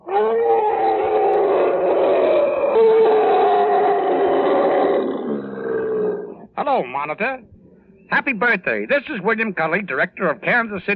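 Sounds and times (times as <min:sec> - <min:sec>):
elephant trumpeting at a zoo: 0:00.0 - 0:06.4
speech: 0:06.8 - 0:07.5, 0:08.2 - 0:10.9.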